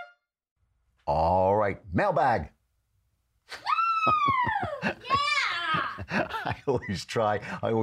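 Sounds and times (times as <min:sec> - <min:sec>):
speech: 0:01.1 - 0:02.5, 0:06.7 - 0:07.8
person screaming high-pitched: 0:03.5 - 0:06.1
choppy laugh-like bursts: 0:03.5 - 0:07.8.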